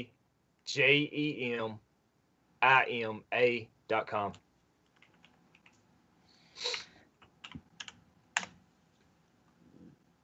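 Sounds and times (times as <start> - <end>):
speech: 0.7 - 1.9, 2.6 - 4.4, 6.6 - 6.8
typing on a computer keyboard: 4.8 - 5.8, 7.2 - 8.6.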